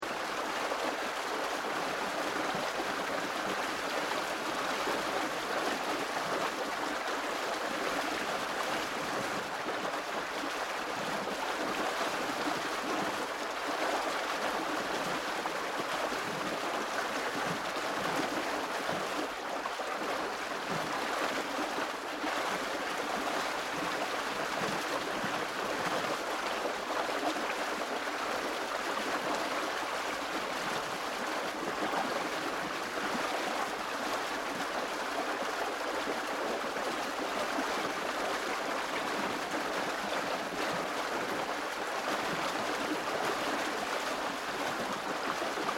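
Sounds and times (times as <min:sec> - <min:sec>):
strong fast-flowing water behind a canal weir sluice gate: 0:00.0 - 0:45.7.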